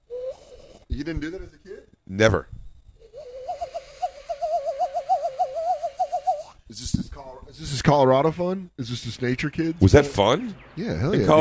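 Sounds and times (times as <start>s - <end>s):
person imitating a bird call with warbling hoot: 0.0s - 0.8s, 3.0s - 6.6s
speech: 1.0s - 2.6s, 7.6s - 11.3s.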